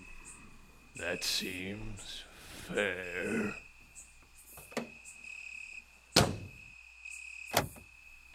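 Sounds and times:
speech: 0:01.0 - 0:03.6
car door locks releasing with mechanical clunks: 0:07.5 - 0:07.9.

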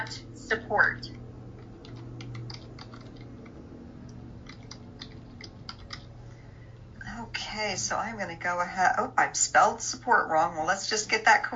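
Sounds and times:
steady low hum: 0:00.0 - 0:11.5
speech: 0:00.1 - 0:01.2, 0:07.6 - 0:11.5
keys tapped on a computer keyboard: 0:01.6 - 0:03.6, 0:04.4 - 0:06.1.

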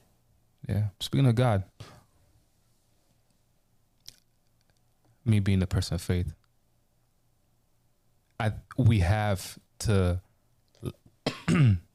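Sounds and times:
speech: 0:00.7 - 0:01.7, 0:05.2 - 0:06.4, 0:08.4 - 0:11.8
two people coughing at the same time: 0:11.3 - 0:11.8.

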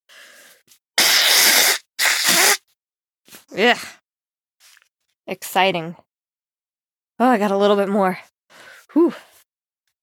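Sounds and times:
person blowing nose: 0:01.0 - 0:02.7
speech: 0:03.6 - 0:04.0, 0:05.3 - 0:06.0, 0:07.2 - 0:09.3.

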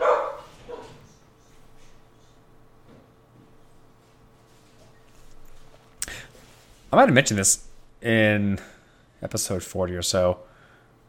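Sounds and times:
dog barking: 0:00.0 - 0:01.1
speech: 0:06.9 - 0:10.5.

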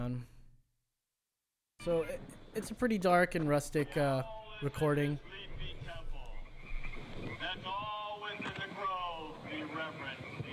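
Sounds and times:
speech: 0:00.0 - 0:00.3, 0:01.8 - 0:06.0
indistinct voices murmuring: 0:01.8 - 0:10.5
frogs croaking in a chorus: 0:05.1 - 0:10.5
wind noise: 0:05.2 - 0:10.5.

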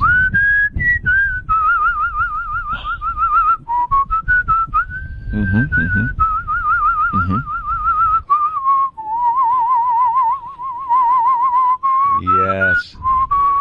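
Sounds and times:
person whistling a wavering melodic tune with vibrato: 0:00.0 - 0:13.5.

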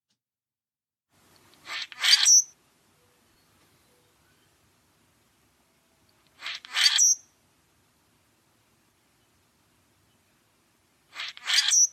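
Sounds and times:
common grackle calling: 0:01.6 - 0:04.6, 0:06.4 - 0:07.4, 0:11.1 - 0:11.9.

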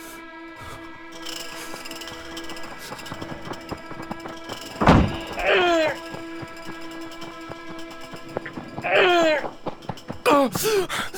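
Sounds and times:
high wavering wailing cries: 0:00.0 - 0:11.1
insects chirping: 0:00.0 - 0:11.1
car boot lid slamming shut onto fingers: 0:04.8 - 0:05.4.

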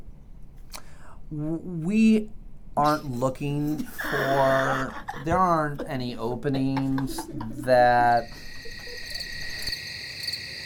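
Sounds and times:
speech: 0:01.3 - 0:08.5
laughter: 0:03.7 - 0:09.7
night chorus of crickets chirping: 0:07.2 - 0:10.6.

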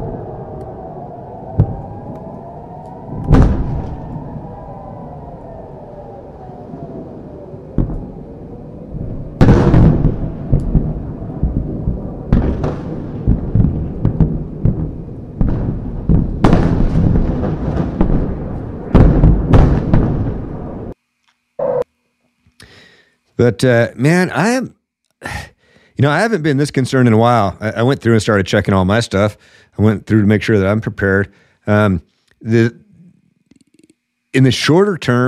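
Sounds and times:
explosions of interceptor missiles striking rockets in midair: 0:01.5 - 0:02.2, 0:03.1 - 0:04.6, 0:07.7 - 0:08.2, 0:08.9 - 0:21.0
speech: 0:23.4 - 0:25.4, 0:26.0 - 0:32.8, 0:34.3 - 0:35.2.

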